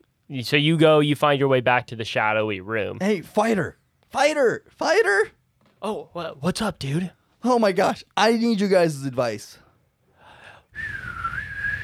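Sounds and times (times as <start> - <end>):
speech: 0.3 - 9.6
man whistling a long sustained wavering note: 10.8 - 11.8.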